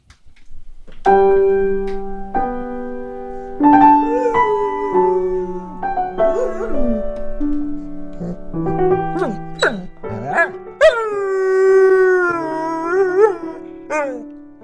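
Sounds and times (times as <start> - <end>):
slow piano melody: 0.2 - 14.6
large shaggy Border Collie Newfoundland mix dog howling: 3.8 - 7.0, 9.2 - 14.6.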